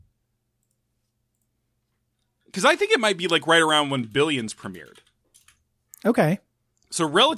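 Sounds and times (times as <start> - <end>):
speech: 2.6 - 5.1, 6.0 - 7.3
computer keyboard typing a search query: 2.6 - 5.7.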